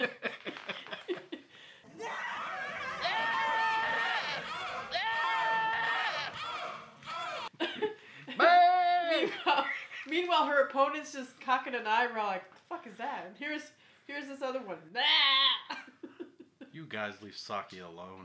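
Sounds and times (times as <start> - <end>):
laughter: 0.0 - 10.2
speech: 10.4 - 15.3, 16.9 - 18.2
goat bleating: 15.0 - 15.7.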